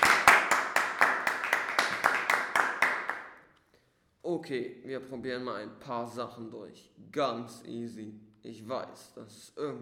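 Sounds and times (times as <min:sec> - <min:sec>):
applause: 0:00.0 - 0:03.4
speech: 0:04.3 - 0:09.8.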